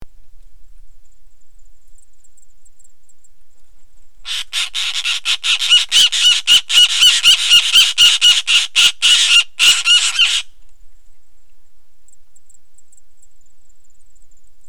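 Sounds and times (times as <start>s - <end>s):
Elanus scriptus letter-winged kite call: 4.3s - 10.5s.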